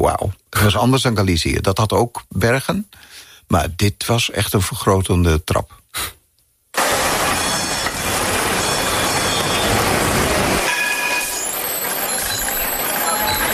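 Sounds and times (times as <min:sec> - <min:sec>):
speech: 0:00.0 - 0:06.2
high ringing tones: 0:06.8 - 0:13.5
tram rumbling in a city street: 0:06.8 - 0:13.5.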